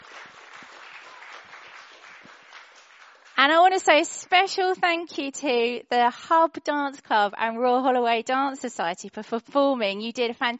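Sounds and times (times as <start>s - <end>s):
audience applause: 0.0s - 3.8s
speech: 3.4s - 10.5s.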